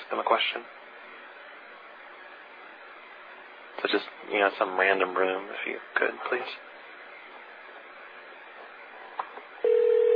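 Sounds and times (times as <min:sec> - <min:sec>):
speech: 0:00.1 - 0:00.8, 0:03.8 - 0:06.7
ringback tone over a thin phone line: 0:09.6 - 0:10.1.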